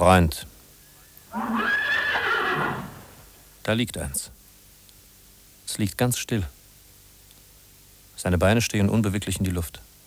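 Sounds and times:
speech: 0.0s - 0.5s, 3.7s - 4.4s, 5.7s - 6.6s, 8.2s - 9.9s
horse neighing: 1.3s - 3.4s.

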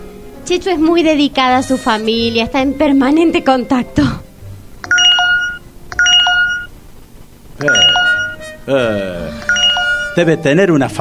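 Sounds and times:
speech: 0.5s - 4.2s, 8.7s - 9.1s, 10.2s - 10.9s
mobile phone notification tones from many incoming messages: 4.8s - 6.7s, 7.6s - 8.5s, 9.4s - 10.3s.

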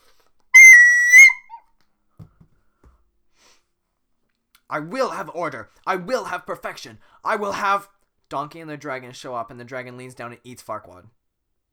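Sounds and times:
man whistling: 0.6s - 1.6s
speech: 4.7s - 11.2s.

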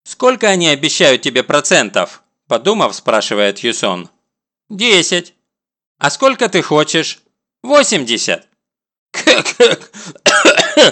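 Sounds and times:
speech: 0.2s - 5.4s, 6.0s - 8.5s, 9.1s - 10.9s
man coughing harshly during a tense exchange: 9.2s - 10.9s.

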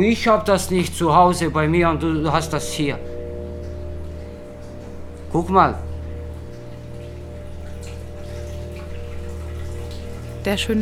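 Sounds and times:
speech: 0.0s - 3.2s, 5.3s - 5.9s, 10.4s - 10.8s
water running in a toilet next door: 6.6s - 10.4s.

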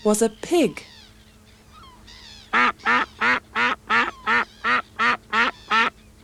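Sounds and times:
speech: 0.0s - 1.0s, 2.6s - 3.0s
duck quacking: 2.5s - 6.2s.

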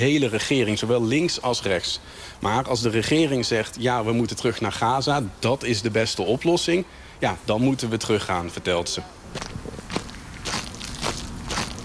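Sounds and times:
speech: 0.0s - 9.7s
crunching footsteps of people walking away from a museum: 9.3s - 11.8s.

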